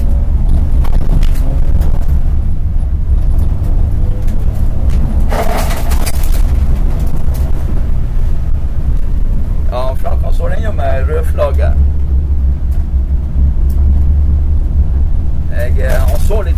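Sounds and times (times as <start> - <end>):
racing car engines roaring around a racetrack: 0.0 - 16.5
wind: 0.0 - 16.5
voices: 9.6 - 11.9, 15.5 - 16.5.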